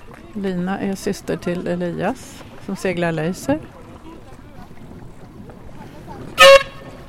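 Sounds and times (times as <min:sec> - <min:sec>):
speech: 0:00.4 - 0:03.8
horn toot for a sailboat finishing: 0:06.4 - 0:07.0.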